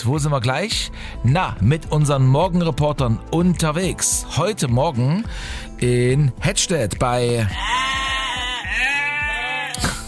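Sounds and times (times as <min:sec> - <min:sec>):
speech: 0:00.0 - 0:08.1
Cameroon sheep bleating: 0:07.4 - 0:09.8.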